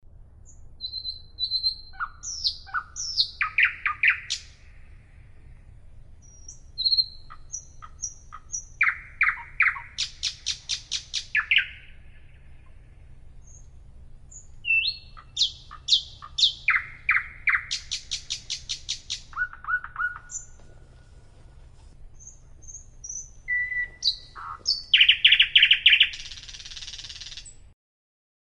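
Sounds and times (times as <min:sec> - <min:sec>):
nightingale song: 0:00.4 - 0:27.7.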